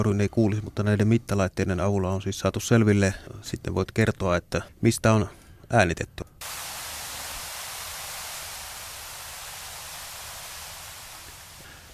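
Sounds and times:
speech: 0.0s - 6.3s
acoustic hiss recorded in underground tunnels: 6.4s - 11.9s.

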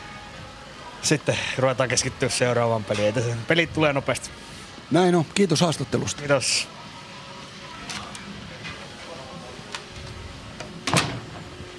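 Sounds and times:
steady hum of indoor noise: 0.0s - 11.7s
speech: 1.0s - 6.8s
door swinging shut with a solid thud: 10.8s - 11.5s.

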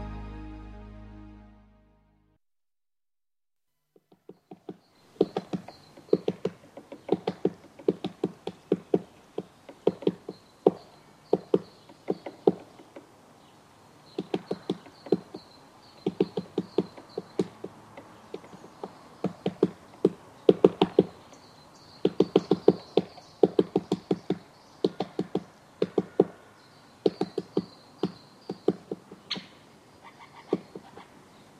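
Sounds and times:
great spotted woodpecker tapping on standing dead tree in January: 3.9s - 13.1s, 14.1s - 29.5s, 30.3s - 31.0s.

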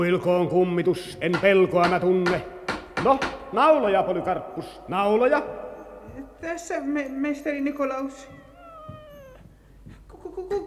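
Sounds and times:
speech: 0.0s - 5.6s, 6.2s - 8.4s, 10.4s - 10.6s
old tomcat meowing and yowling in a mortuary: 8.1s - 9.5s.

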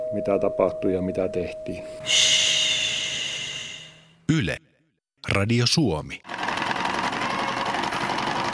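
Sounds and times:
speech: 0.1s - 2.5s, 4.3s - 4.7s, 5.3s - 6.3s
sewing machine running: 6.3s - 8.5s.

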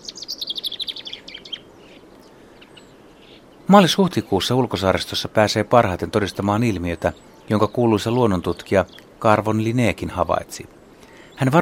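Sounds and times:
male common chaffinch spring song: 0.0s - 4.8s, 5.8s - 11.6s
speech: 3.7s - 10.8s, 11.4s - 11.6s.

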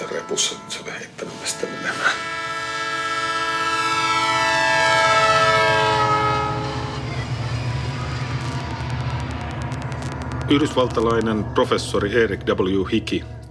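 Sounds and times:
train horn blaring: 0.0s - 9.0s
train rumbling along the tracks: 0.0s - 13.4s
speech: 0.3s - 2.5s, 10.5s - 13.4s.

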